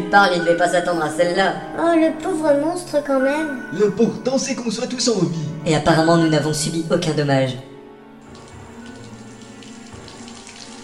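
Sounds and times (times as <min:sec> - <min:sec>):
speech: 0:00.1 - 0:07.7
water pouring in through a leak: 0:08.2 - 0:10.8.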